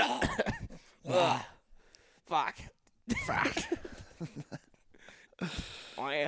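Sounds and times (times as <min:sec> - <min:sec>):
person coughing and choking during goose-calling exercises: 0:00.0 - 0:01.5, 0:03.1 - 0:04.0
speech: 0:01.1 - 0:01.5, 0:02.3 - 0:04.7, 0:05.4 - 0:06.2.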